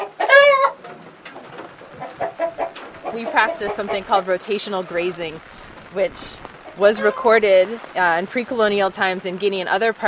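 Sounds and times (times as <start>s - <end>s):
loud drawn-out harmonic chicken squawk: 0.0s - 0.8s, 1.9s - 4.0s, 6.7s - 7.4s
chickens clucking on a farm: 0.0s - 8.0s
speech: 3.2s - 10.0s.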